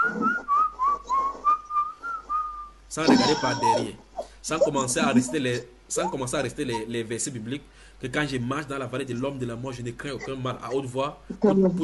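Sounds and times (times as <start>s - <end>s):
person whistling clear high notes: 0.0s - 2.8s
speech: 2.9s - 11.8s.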